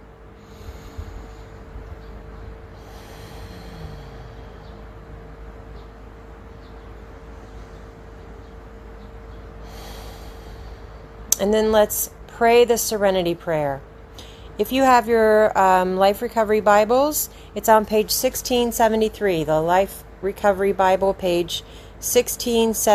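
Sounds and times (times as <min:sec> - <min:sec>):
faint constant tone: 0:00.0 - 0:22.9
steady hum: 0:00.0 - 0:22.9
slow deep airy breaths at a recovery group meeting: 0:00.3 - 0:05.4, 0:09.4 - 0:11.4, 0:14.1 - 0:14.6, 0:17.3 - 0:17.6, 0:21.6 - 0:22.0
speech: 0:11.4 - 0:13.9, 0:14.6 - 0:22.9.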